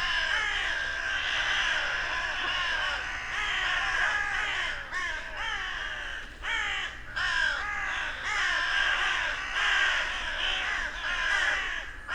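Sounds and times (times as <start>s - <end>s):
Carrion crow Corvus corone cawing: 0.0s - 12.1s.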